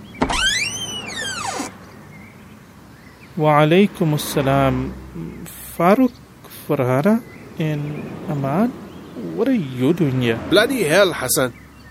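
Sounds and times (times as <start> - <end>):
door creaking open with hinge squeak: 0.0 - 1.7
speech: 3.4 - 11.6.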